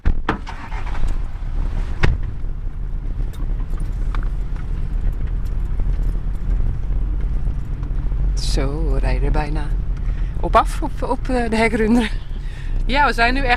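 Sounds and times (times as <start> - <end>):
jeep low engine drone on a dirt track safari drive: 0.3 - 13.5
speech: 9.2 - 9.8, 10.4 - 12.2, 12.9 - 13.5.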